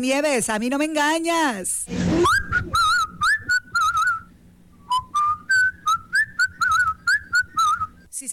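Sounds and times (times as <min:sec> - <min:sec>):
speech: 0:00.0 - 0:02.4
person whistling a lively melody: 0:02.2 - 0:08.0.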